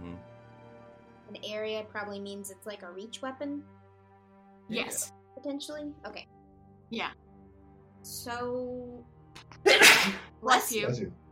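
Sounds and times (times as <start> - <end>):
speech: 1.3 - 3.8, 4.7 - 6.3, 6.9 - 7.2, 8.0 - 11.2
person sneezing: 9.6 - 10.3.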